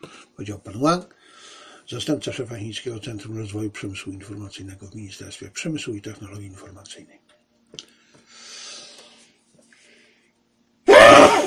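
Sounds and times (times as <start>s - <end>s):
speech: 0.0s - 7.8s
man sneezing: 10.9s - 11.4s.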